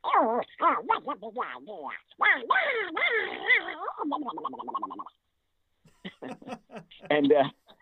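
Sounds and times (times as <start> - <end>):
voice performer imitating an irascible cartoon duck quacking: 0.0 - 5.2
speech: 0.2 - 5.2, 6.1 - 7.6
laughter: 5.9 - 7.7.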